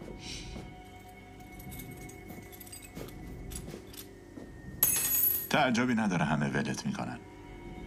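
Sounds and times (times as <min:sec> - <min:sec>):
keys jangling as they are handed back: 0:01.4 - 0:04.1
speech: 0:05.5 - 0:07.4.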